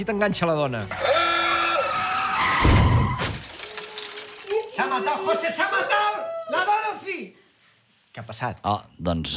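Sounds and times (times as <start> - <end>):
speech: 0.0 - 1.2, 4.8 - 7.4, 8.2 - 9.3
car crash with shattering, crunching impact: 2.4 - 4.5
debris falling: 2.6 - 5.5.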